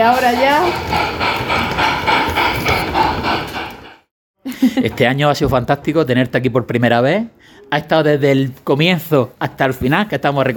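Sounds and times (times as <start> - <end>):
speech: 0.0 - 2.7, 4.7 - 10.5
model train running on a railway layout: 0.0 - 4.1.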